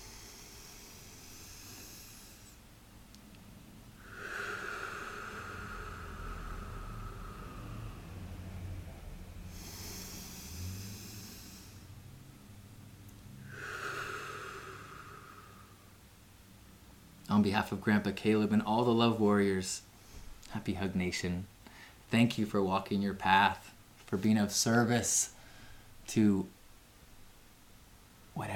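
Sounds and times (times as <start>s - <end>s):
deep slow breaths during a guided breathing exercise: 0.0s - 2.8s, 3.9s - 12.5s, 13.4s - 16.1s, 19.8s - 20.5s, 21.6s - 22.1s, 25.1s - 26.1s
speech: 17.4s - 19.9s, 20.5s - 21.5s, 22.1s - 25.4s, 26.1s - 26.6s, 28.4s - 28.5s.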